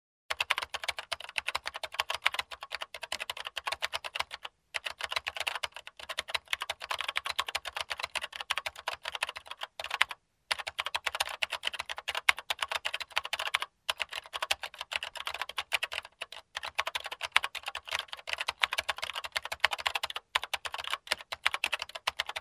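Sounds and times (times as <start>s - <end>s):
typing on old computer keyboard: 0.3s - 22.3s.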